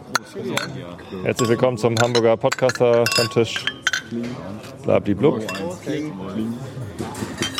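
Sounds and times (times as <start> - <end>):
several glasses clinking together in a toast: 0.0 - 4.2, 5.4 - 5.8, 7.4 - 7.5
speech: 0.4 - 7.5.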